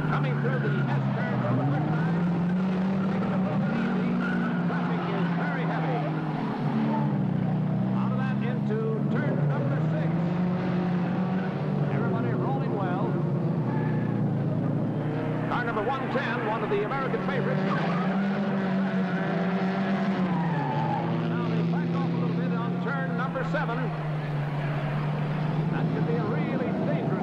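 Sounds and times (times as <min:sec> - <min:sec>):
racing car tires squealing: 0:00.0 - 0:27.2
several racing cars roaring around a race track: 0:00.0 - 0:27.2
speech: 0:00.2 - 0:01.9, 0:16.6 - 0:17.8.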